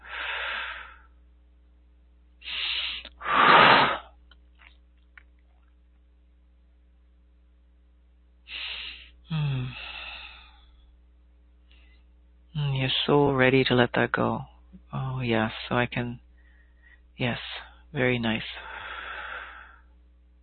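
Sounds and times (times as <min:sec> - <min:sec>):
deep breaths drawn in and let out during a guided healing session: 0:00.0 - 0:01.2, 0:02.4 - 0:04.2, 0:08.5 - 0:10.9, 0:16.3 - 0:17.8, 0:18.5 - 0:20.0
steady low mains hum: 0:00.0 - 0:20.4
speech: 0:13.0 - 0:16.2, 0:17.2 - 0:18.7.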